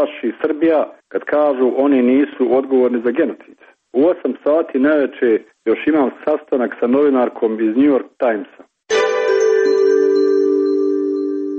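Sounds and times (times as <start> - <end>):
speech: 0.0 - 9.0
telephone ringing with an electronic tone: 8.9 - 11.5.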